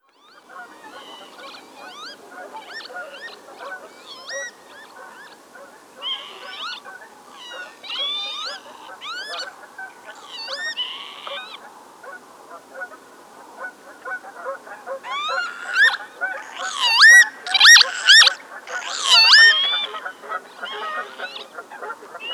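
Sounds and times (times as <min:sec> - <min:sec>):
lapwing birdsong: 0:00.1 - 0:11.7, 0:15.0 - 0:22.3.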